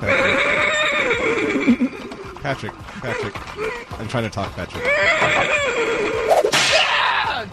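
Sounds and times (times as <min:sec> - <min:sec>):
horse making shrill human-like screams: 0:00.0 - 0:02.4, 0:04.7 - 0:07.4
speech: 0:02.5 - 0:06.5.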